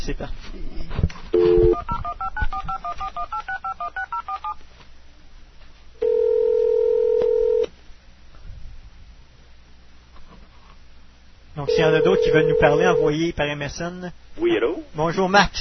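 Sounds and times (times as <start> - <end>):
speech: 0.0 - 1.1, 11.8 - 15.6
faint noise: 0.0 - 15.6
telephone dial tone: 1.4 - 4.4, 6.0 - 7.7, 11.7 - 13.1.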